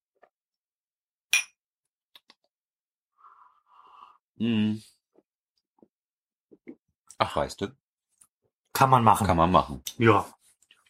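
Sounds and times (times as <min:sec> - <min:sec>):
beer glasses clinking in a toast: 0:01.3 - 0:01.6
speech: 0:04.4 - 0:04.9, 0:07.2 - 0:07.8, 0:08.8 - 0:10.4.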